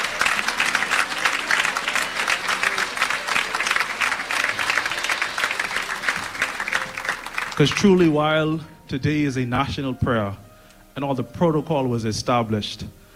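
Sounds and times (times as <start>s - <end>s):
large audience applauding at a national prayer gathering: 0.0s - 8.2s
speech: 7.6s - 10.4s, 11.0s - 13.0s.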